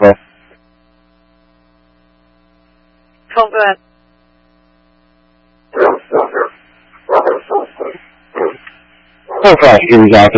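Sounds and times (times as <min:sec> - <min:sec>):
speech: 0:00.0 - 0:00.2, 0:03.4 - 0:03.8, 0:09.4 - 0:10.3
dogs barking inside a house: 0:05.8 - 0:08.7, 0:09.3 - 0:09.8.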